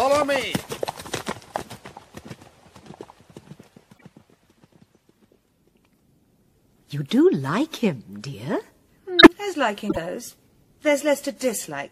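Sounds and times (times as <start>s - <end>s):
horses galloping: 0.0s - 5.8s
speech: 0.2s - 0.8s, 6.9s - 8.7s, 9.5s - 11.9s.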